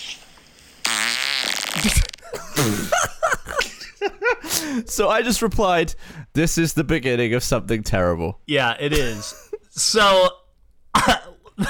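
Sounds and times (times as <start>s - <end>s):
long raspy fart recorded as iPhone voice memo playing over small speaker: 0.8s - 2.8s
speech: 1.8s - 2.0s, 4.4s - 11.6s.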